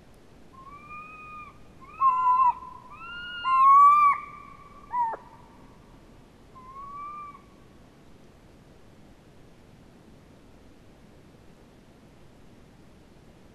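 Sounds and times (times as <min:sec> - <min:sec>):
owls hooting: 0:00.6 - 0:05.4, 0:06.6 - 0:07.4.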